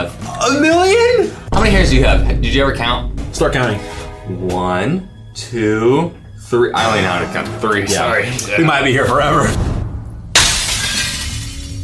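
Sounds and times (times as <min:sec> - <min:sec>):
speech: 0:00.0 - 0:09.7
low rumble: 0:01.5 - 0:05.5
glass shattering: 0:10.4 - 0:11.8.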